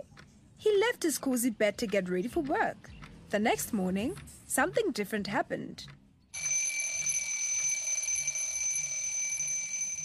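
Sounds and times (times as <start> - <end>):
speech: 0.7 - 6.0
alarm clock ringing with high-pitched electronic tone: 6.4 - 10.0.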